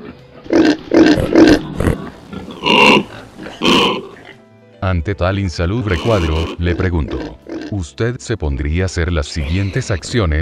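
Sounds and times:
pig grunting and oinking while wallowing in mud and garbage: 0.0s - 4.4s, 5.8s - 7.8s, 9.4s - 10.2s
speech: 4.9s - 10.3s.

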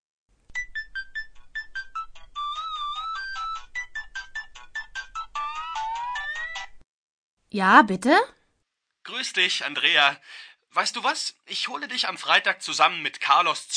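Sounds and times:
electronic phone ringtone for an incoming call: 0.6s - 6.7s
speech: 7.5s - 8.4s, 9.1s - 13.7s.

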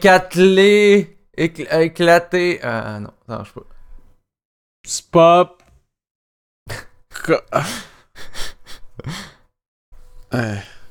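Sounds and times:
speech: 0.0s - 3.7s, 4.8s - 5.6s, 6.7s - 9.3s, 10.3s - 10.8s
person gasping and panting out of breath: 7.5s - 9.5s.

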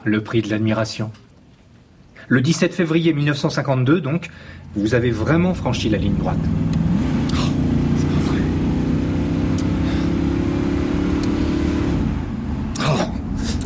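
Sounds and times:
speech: 0.0s - 1.2s, 2.2s - 6.8s
faint breathy sounds: 4.2s - 4.8s
car engine driving fast: 4.7s - 13.6s.

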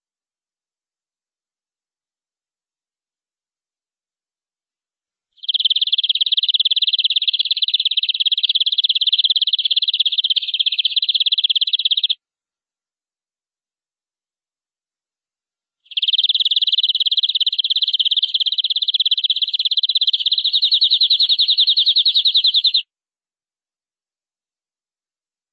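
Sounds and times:
canary trilling: 5.4s - 12.2s, 15.9s - 22.8s.

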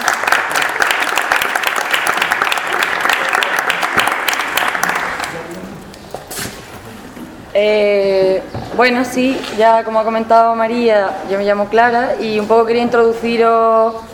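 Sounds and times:
audience applause for the speakers at a fanzine fair talk: 0.0s - 5.6s
speech: 7.6s - 14.1s.

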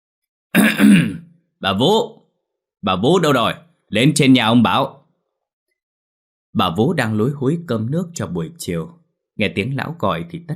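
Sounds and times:
speech: 0.5s - 2.2s, 2.8s - 5.0s, 6.6s - 10.5s
old man clearing his throat: 0.6s - 1.3s.

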